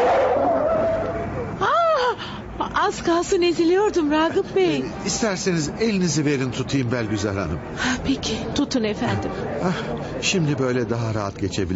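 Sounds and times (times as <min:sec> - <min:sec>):
high squealing tire tone: 0:00.0 - 0:01.5
cars whizzing past in busy Istanbul city traffic: 0:00.0 - 0:01.6
speech: 0:02.9 - 0:11.7.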